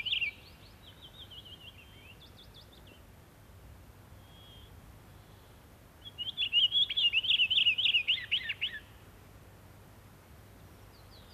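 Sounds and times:
Pine Grosbeak song: 0:00.0 - 0:03.0, 0:04.2 - 0:09.0, 0:10.9 - 0:11.3.

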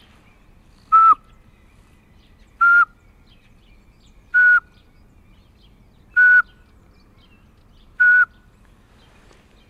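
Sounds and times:
person lip-whistling imitation of Eurasian pygmy owl song: 0:00.9 - 0:01.2, 0:02.6 - 0:03.0, 0:04.4 - 0:04.7, 0:06.2 - 0:06.5, 0:08.0 - 0:08.3.

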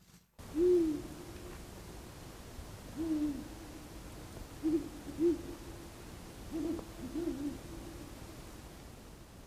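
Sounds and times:
steady hiss of mobile phone recording: 0:00.0 - 0:09.4
owls hooting at night by Lake Moijärvi in Padasjoki Finland: 0:00.5 - 0:01.2, 0:03.0 - 0:03.5, 0:04.6 - 0:05.6, 0:06.5 - 0:07.6.

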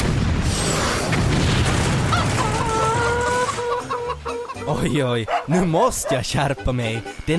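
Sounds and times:
deep rumbling blast of a shot hitting a henhouse: 0:00.0 - 0:03.3
low roar of flames consuming a henhouse: 0:00.0 - 0:03.3
agitated chickens clucking and squawking: 0:02.2 - 0:07.2
speech: 0:04.8 - 0:07.3.

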